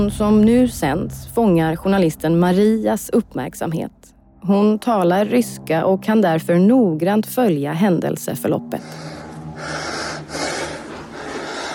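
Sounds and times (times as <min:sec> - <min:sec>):
speech: 0:00.0 - 0:09.8
man breathing heavily: 0:08.8 - 0:11.7.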